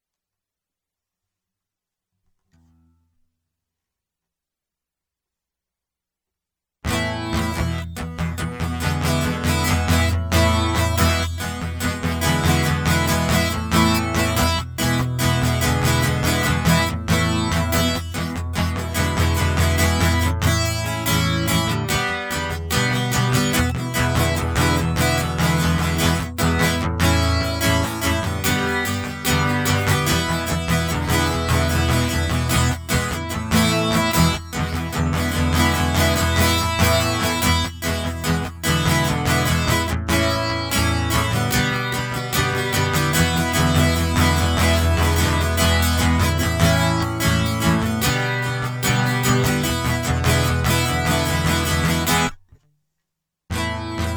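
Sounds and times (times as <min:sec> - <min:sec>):
guitar loop: 0:06.9 - 0:52.6, 0:53.5 - 0:54.1.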